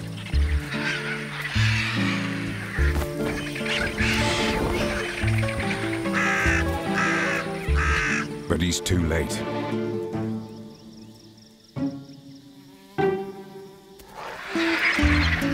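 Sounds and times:
other birds squawking: 0:00.0 - 0:12.6, 0:13.2 - 0:15.5
crow cawing harshly: 0:00.4 - 0:08.5, 0:14.2 - 0:15.5
speech: 0:08.6 - 0:09.8.

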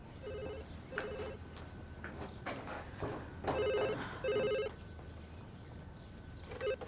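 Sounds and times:
telephone ringing in a home: 0:00.2 - 0:01.4, 0:03.5 - 0:04.8, 0:06.5 - 0:06.8.

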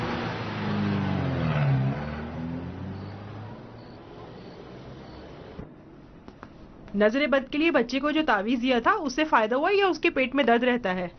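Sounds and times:
car engine revving: 0:00.0 - 0:05.6
speech: 0:07.0 - 0:11.1.

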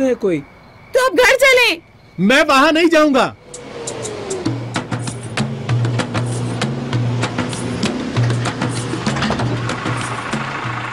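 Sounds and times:
speech: 0:00.0 - 0:03.4
car engine running: 0:03.3 - 0:10.9
sharp clicks and rattles: 0:08.2 - 0:10.3.

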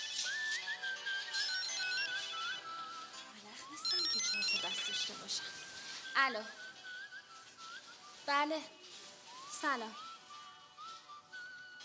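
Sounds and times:
telephone ringtone warbling electronic melody: 0:00.0 - 0:07.9
speech: 0:05.3 - 0:05.6, 0:06.2 - 0:06.6, 0:08.3 - 0:08.8, 0:09.6 - 0:10.0.

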